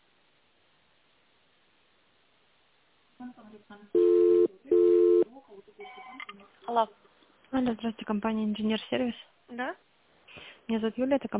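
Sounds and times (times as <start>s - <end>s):
speech: 3.2s - 4.8s, 5.4s - 11.3s
telephone ringback tone on a business call: 4.0s - 5.2s.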